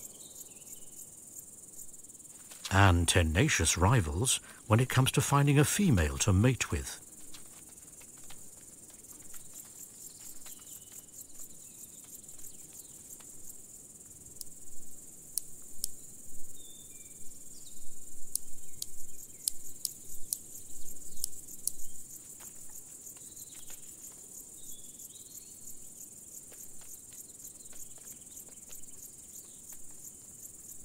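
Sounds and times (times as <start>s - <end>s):
steady high insect hum: 0.0s - 4.7s, 5.4s - 30.8s
large marsh grasshoppers stridulating on wet ground: 0.0s - 16.7s, 17.4s - 30.8s
speech: 2.7s - 7.0s.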